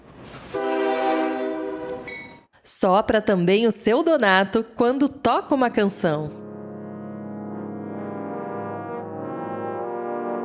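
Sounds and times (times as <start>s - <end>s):
train horn blowing at a station: 0.5s - 2.1s, 6.4s - 10.4s
speech: 2.7s - 6.4s.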